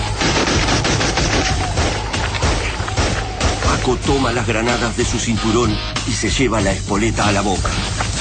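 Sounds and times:
dense gunfire in a radio drama battle scene: 0:00.1 - 0:03.9
speech: 0:04.1 - 0:08.0.

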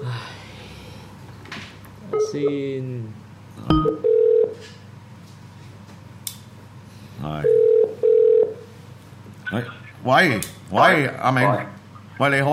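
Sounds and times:
speech: 0:02.3 - 0:04.8, 0:09.6 - 0:12.5
short steady telephone tone: 0:03.8 - 0:04.6, 0:07.5 - 0:08.6.

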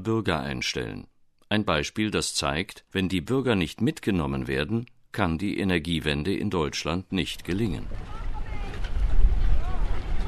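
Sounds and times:
speech: 0:00.0 - 0:08.2
wind at a small sunny harbour in Sweden: 0:05.5 - 0:10.2
rippling water at a small harbour in Sweden: 0:07.8 - 0:10.2.

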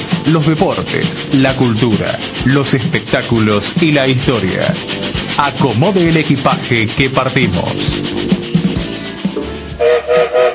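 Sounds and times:
train moving off: 0:00.0 - 0:10.5
speech: 0:00.2 - 0:08.4
train whistle blasts: 0:09.8 - 0:10.5.

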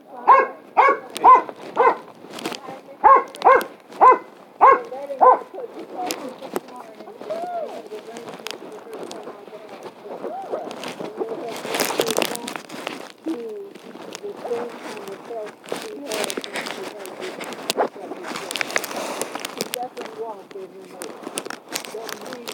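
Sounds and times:
people talking: 0:00.0 - 0:22.5
dog barking as people walk past: 0:00.2 - 0:02.1, 0:03.0 - 0:05.7.

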